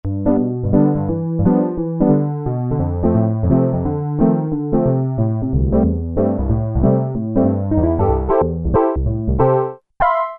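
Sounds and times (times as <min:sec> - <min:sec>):
Korg Poly-800 synthesizer Chorus Piano patch: 0:00.0 - 0:10.3.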